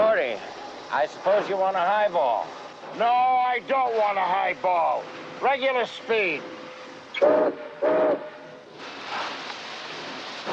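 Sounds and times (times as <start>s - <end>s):
freight train departing with rumble and hiss: 0.0s - 10.5s
speech: 0.3s - 6.6s, 7.2s - 8.0s
freight train whistle toots: 7.1s - 8.6s.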